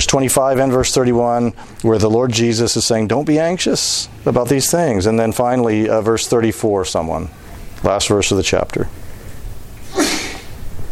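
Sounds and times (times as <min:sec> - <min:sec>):
speech: 0:00.0 - 0:09.0
person sneezing: 0:09.8 - 0:10.6.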